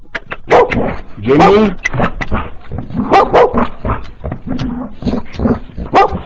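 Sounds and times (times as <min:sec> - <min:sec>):
dog barking in short sharp yaps and whimpering yips: 0:00.5 - 0:01.6, 0:03.0 - 0:04.1, 0:05.8 - 0:06.2
speech: 0:00.9 - 0:03.7.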